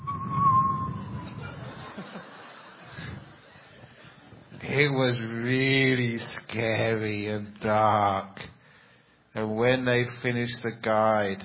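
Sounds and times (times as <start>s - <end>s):
thin steady whistle: 0.0s - 1.6s
laughter: 1.2s - 4.6s
speech: 4.7s - 8.5s, 9.4s - 11.4s.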